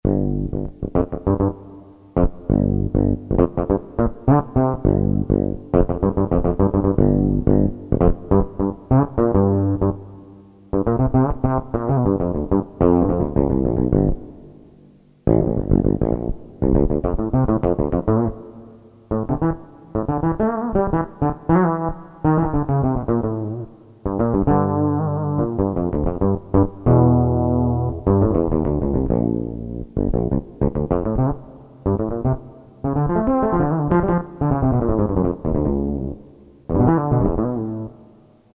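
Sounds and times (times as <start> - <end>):
jazz bass on a Korg DSS-1 synthesizer: 0.0 - 38.1.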